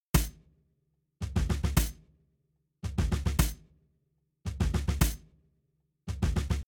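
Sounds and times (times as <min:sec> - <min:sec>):
shuffle drums: 0:01.2 - 0:02.0, 0:02.8 - 0:03.6, 0:04.5 - 0:05.2, 0:06.1 - 0:06.6.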